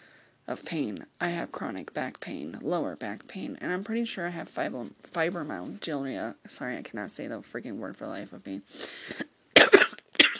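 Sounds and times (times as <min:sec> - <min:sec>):
speech: 0:00.5 - 0:09.2
harsh coughs: 0:09.1 - 0:10.3.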